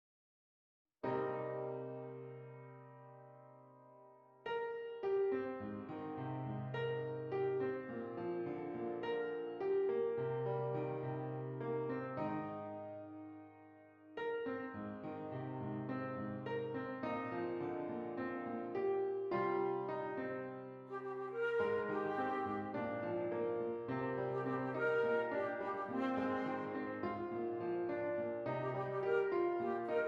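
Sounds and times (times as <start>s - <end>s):
piano: 1.0s - 30.0s
flute: 20.9s - 27.6s, 28.5s - 30.0s.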